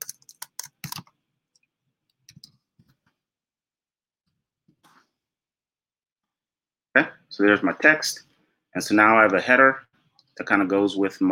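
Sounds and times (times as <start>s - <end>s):
typing text on a computer keyboard: 0.0s - 1.1s, 2.3s - 2.5s
speech: 7.0s - 11.3s.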